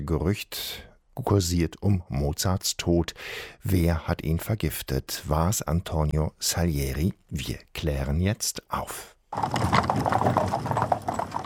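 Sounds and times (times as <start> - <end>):
speech: 0.0 - 10.8
horse hooves clopping: 9.3 - 11.4
horse-drawn carriage rattling over rough ground: 9.3 - 11.4.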